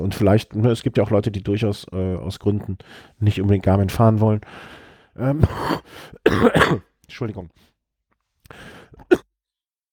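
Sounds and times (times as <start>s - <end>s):
speech: 0.0s - 7.7s, 8.5s - 9.3s
person coughing: 5.4s - 6.9s, 9.0s - 9.3s.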